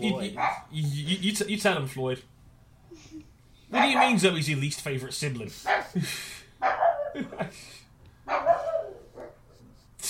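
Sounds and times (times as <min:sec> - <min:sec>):
speech: 0:00.0 - 0:02.4, 0:03.0 - 0:08.5
dog barking excitedly: 0:00.3 - 0:00.7, 0:03.7 - 0:04.2, 0:05.7 - 0:06.0, 0:06.6 - 0:07.2, 0:08.3 - 0:09.4
dog whining and yelping: 0:00.3 - 0:00.7, 0:06.6 - 0:07.2, 0:08.3 - 0:09.4.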